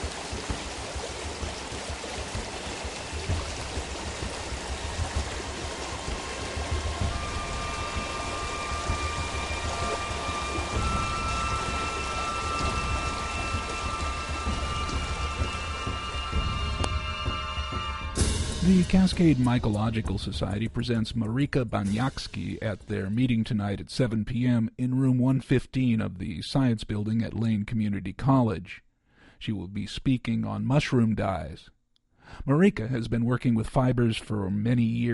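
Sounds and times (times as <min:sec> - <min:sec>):
heavy rain in a river valley thunderstorm: 0:00.0 - 0:19.0
deep low rumble of thunder in a river valley: 0:00.0 - 0:20.5
speech: 0:18.7 - 0:28.8, 0:29.4 - 0:35.1.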